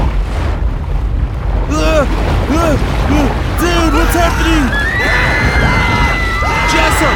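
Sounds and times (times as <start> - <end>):
large ocean wave surging toward the beach with a deep roar: 0.0 - 7.1
short rising-and-falling vocal cries: 1.7 - 7.1.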